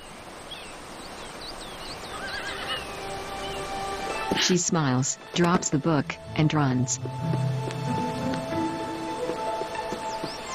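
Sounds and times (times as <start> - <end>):
horse neighing while galloping down a hill: 2.1 - 2.9, 7.0 - 9.2
speech: 4.4 - 7.8
steady rumbling background: 4.8 - 10.4.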